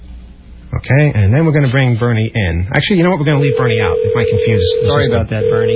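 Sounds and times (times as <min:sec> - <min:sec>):
speech: 0:00.9 - 0:05.7
touch-tone phone dialing beeps: 0:03.4 - 0:05.7.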